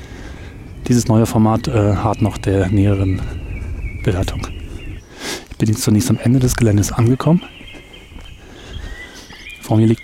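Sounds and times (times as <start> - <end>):
chorus of many birds singing outdoors: 0.0 - 10.0
soft low thuds like footsteps: 0.0 - 10.0
speech: 0.9 - 3.4, 4.0 - 4.6, 5.6 - 7.6, 9.7 - 10.0.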